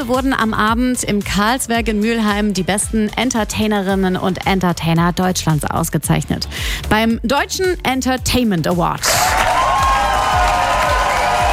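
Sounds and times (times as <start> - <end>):
speech: 0.0 - 9.4
faint crowd cheering at an entertainment award ceremony: 9.0 - 11.5
dense applause at an entertainment award ceremony: 9.1 - 11.5.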